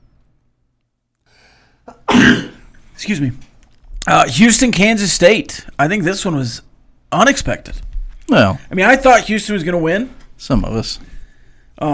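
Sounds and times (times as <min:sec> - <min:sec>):
person sneezing: 0:01.8 - 0:02.7
speech: 0:03.0 - 0:03.5, 0:04.1 - 0:11.1.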